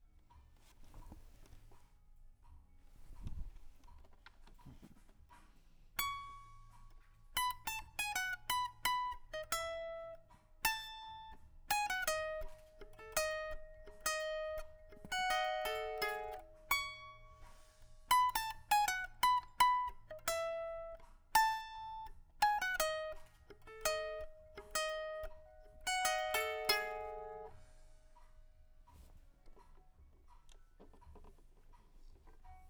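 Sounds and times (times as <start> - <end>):
guitar through a microphone: 6.0 - 31.4.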